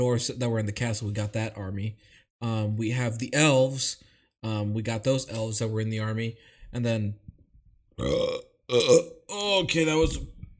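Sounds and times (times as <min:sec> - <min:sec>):
speech: 0:00.0 - 0:07.3, 0:08.0 - 0:10.3
person burping: 0:08.0 - 0:09.3.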